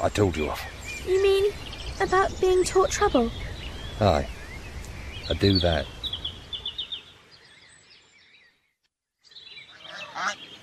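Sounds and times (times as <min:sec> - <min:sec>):
speech: 0:00.0 - 0:04.4, 0:05.3 - 0:06.0
flock of geese honking: 0:09.7 - 0:10.5.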